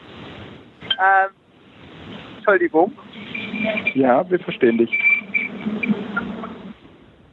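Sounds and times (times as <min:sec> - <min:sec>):
speech: 0:01.0 - 0:01.4, 0:02.4 - 0:05.8
loud train passing by: 0:02.0 - 0:06.8
faint high squeals of a passing train: 0:02.9 - 0:06.8.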